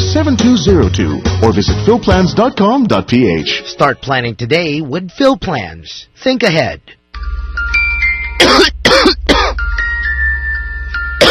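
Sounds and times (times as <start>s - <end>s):
speech: 0.2s - 7.5s
faint steady tonal backing: 2.0s - 11.3s
harsh coughing: 8.4s - 9.6s.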